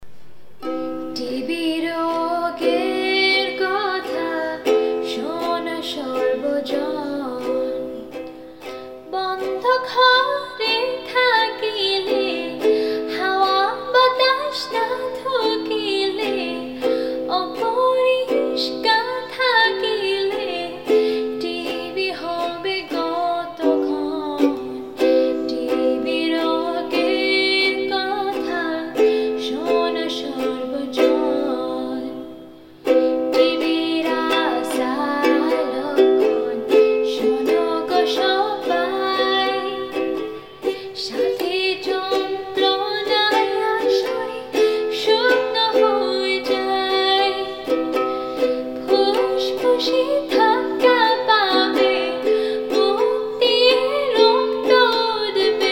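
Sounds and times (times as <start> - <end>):
song with ukulele: 0.0 - 55.7.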